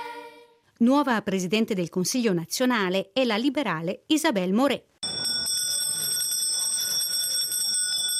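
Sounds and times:
speech: 0.8 - 4.9
small bell rung in a parliament chamber: 5.1 - 8.1.

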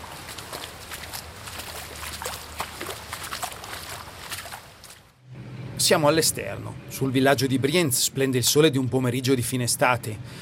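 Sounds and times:
boots sloshing through water and mud in a tunnel being dug: 0.0 - 5.2
speech: 5.8 - 10.3.

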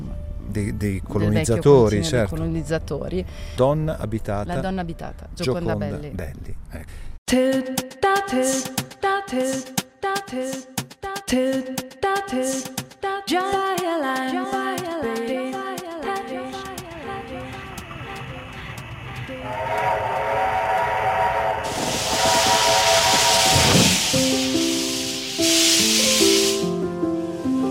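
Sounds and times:
speech: 0.5 - 15.5
steam train chuffing: 16.7 - 27.7
steam train whistle in long harmonic blasts: 19.2 - 27.7.

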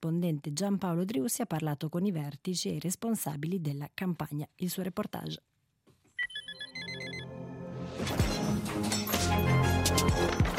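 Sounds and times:
speech: 0.0 - 5.5
alarm clocks ringing: 8.8 - 10.4.

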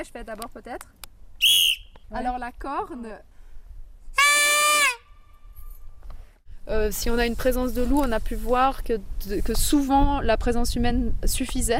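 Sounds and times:
speech: 0.0 - 1.5, 2.1 - 3.3, 6.6 - 11.7
whistle blasts: 1.4 - 2.0, 4.2 - 5.8.

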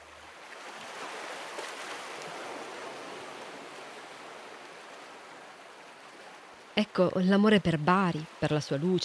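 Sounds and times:
sea waves breaking on shore: 0.0 - 9.0
speech: 6.8 - 9.0.

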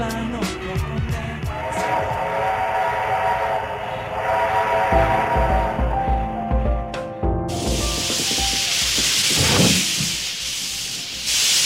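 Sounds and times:
steam train chugging past with heavy chuffing: 0.2 - 6.8, 7.5 - 11.6
loud rush of hissing steam from a steam train: 1.4 - 6.2, 7.5 - 11.6.

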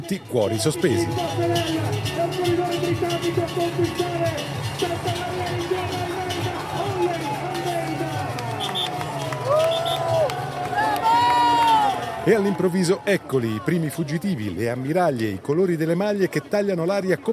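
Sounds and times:
speech: 0.0 - 6.2, 12.2 - 17.3
crowd of fans cheering as a cycling race passes: 0.0 - 14.9
overlapping voices: 0.6 - 12.9
sharp whistles: 8.6 - 9.0, 9.6 - 10.0.

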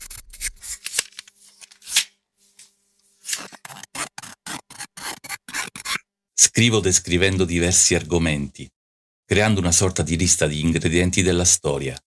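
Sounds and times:
scissors cutting paper: 0.0 - 2.1, 3.2 - 6.0
speech: 6.5 - 12.0.

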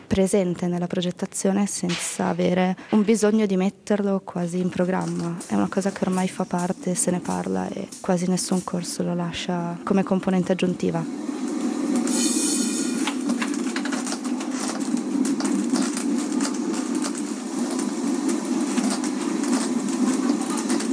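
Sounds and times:
speech: 0.1 - 11.4
Lisbon tram rumbling along city rails: 4.6 - 20.9.

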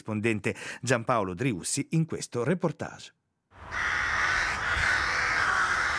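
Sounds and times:
speech: 0.0 - 4.0
crows cawing: 3.6 - 5.9.

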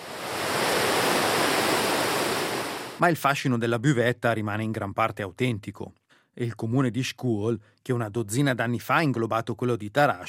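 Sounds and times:
rushing river water: 0.0 - 3.0
speech: 3.0 - 10.2.

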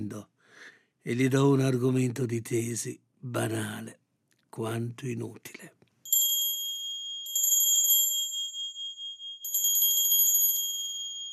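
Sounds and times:
speech: 0.0 - 4.0, 4.6 - 5.8
bright high-pitched metallic bell ringing: 6.1 - 11.3.

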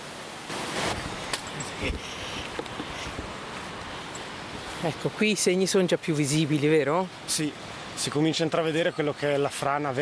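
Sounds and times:
flowing river water rushing: 0.0 - 9.9
speech: 4.8 - 9.9.

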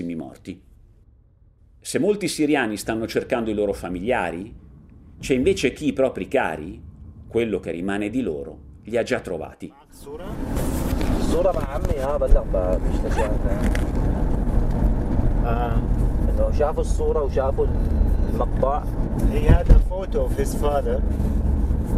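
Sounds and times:
speech: 0.0 - 0.7, 1.8 - 4.6, 5.2 - 10.7, 11.3 - 14.0, 15.4 - 21.9
low road and engine rumble inside a car driving from Oteiba, Syria, into countryside: 0.7 - 21.9.

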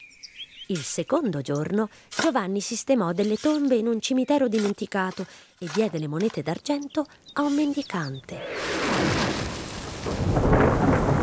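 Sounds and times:
speech: 0.7 - 8.7
thunder rumbling: 8.2 - 11.2
rain falling: 8.3 - 11.2.

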